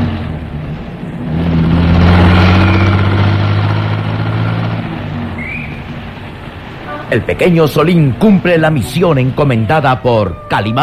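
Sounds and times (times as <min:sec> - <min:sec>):
taxi engine revving and driving off: 0:00.0 - 0:08.4
speech: 0:07.1 - 0:10.8.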